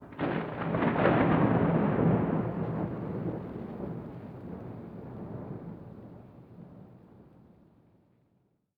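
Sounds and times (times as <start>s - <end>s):
thunderclap: 0.0s - 6.8s
rain: 0.0s - 8.0s.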